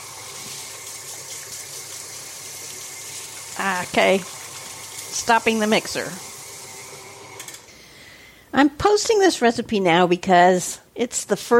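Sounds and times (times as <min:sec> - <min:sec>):
tap water running as hands are rinsed: 0:00.0 - 0:07.7
speech: 0:03.6 - 0:04.4, 0:05.2 - 0:06.3, 0:08.5 - 0:11.5.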